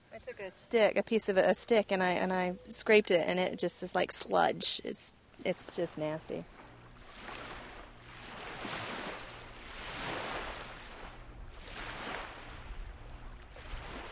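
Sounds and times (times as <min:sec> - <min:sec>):
speech: 0:00.2 - 0:06.6
small lake waves washing ashore: 0:04.6 - 0:14.0.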